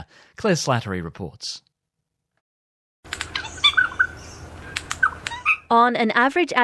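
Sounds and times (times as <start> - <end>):
speech: 0.0 - 1.7, 5.7 - 6.6
regent honeyeater calling with metallic chirps and warbling notes: 3.1 - 5.8.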